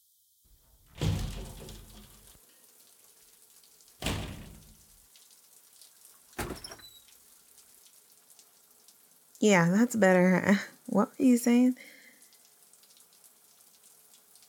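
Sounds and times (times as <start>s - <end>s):
running water spraying like a shower or faucet: 0.5s - 2.4s, 3.9s - 5.0s
door opening and shutting: 0.9s - 2.3s, 4.0s - 4.9s, 6.4s - 7.1s
speech: 9.4s - 12.0s.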